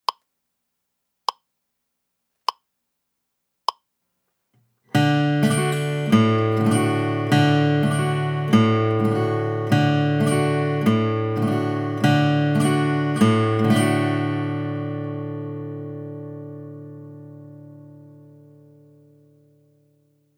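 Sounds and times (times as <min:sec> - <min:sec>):
alternating bass strum on a D chord: 0:05.0 - 0:19.7.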